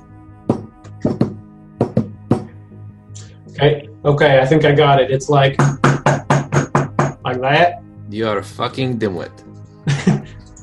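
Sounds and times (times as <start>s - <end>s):
solid knocks on a door in a deliberate pattern: 0.5s - 2.5s, 5.6s - 7.3s
speech: 3.6s - 5.8s, 7.4s - 9.5s
laughter: 9.9s - 10.4s.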